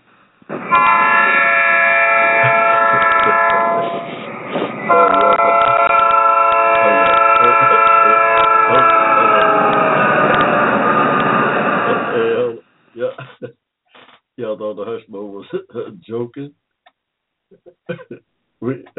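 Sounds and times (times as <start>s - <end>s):
train horn blaring: 0.7s - 12.5s
laughter: 2.4s - 5.6s, 6.8s - 9.8s, 11.9s - 13.5s, 15.3s - 16.0s, 17.7s - 18.8s
speech: 16.3s - 16.6s.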